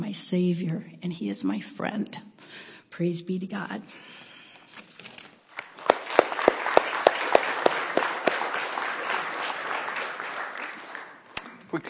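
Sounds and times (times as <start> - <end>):
speech: 0.0 - 4.9
audience applause: 5.6 - 11.4
sharp loud claps in a regular rhythm: 5.6 - 11.6.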